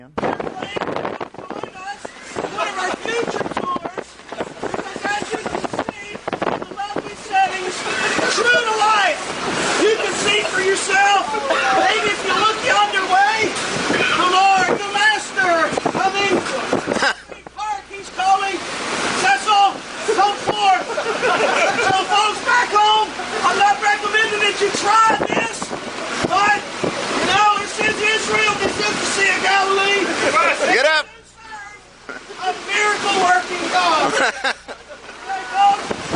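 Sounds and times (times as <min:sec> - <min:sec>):
howling, whistling wind at sea: 0:00.2 - 0:30.4
loud crashing waves of a stormy sea: 0:00.2 - 0:36.1
laughter: 0:02.3 - 0:03.2, 0:07.6 - 0:09.0, 0:09.6 - 0:13.0, 0:16.5 - 0:17.5, 0:19.9 - 0:23.6, 0:29.8 - 0:31.1, 0:32.0 - 0:32.6, 0:33.7 - 0:35.6.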